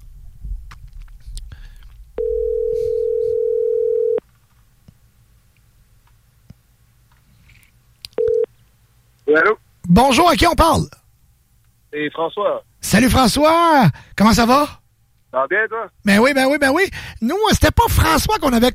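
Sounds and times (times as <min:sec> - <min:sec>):
low rumble: 0:00.0 - 0:02.2
telephone line ringback tone through the earpiece: 0:02.2 - 0:04.2, 0:08.2 - 0:08.5
speech: 0:09.4 - 0:11.0, 0:11.9 - 0:18.7.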